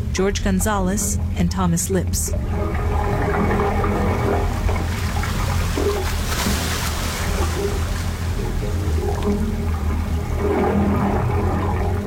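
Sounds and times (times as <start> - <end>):
low hollow droning tones of wave organ pipes venting through stone: 0.0 - 12.0
speech: 0.2 - 2.9
water surging and gurgling through submerged wave organ pipes on San Francisco Bay: 2.3 - 12.0.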